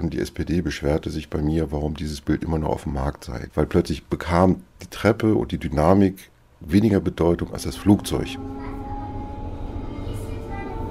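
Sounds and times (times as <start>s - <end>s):
speech: 0.0s - 8.7s
S-Bahn suburban train at Lichterfelde West station in Berlin-Zehlendorf rumbling: 7.4s - 10.8s.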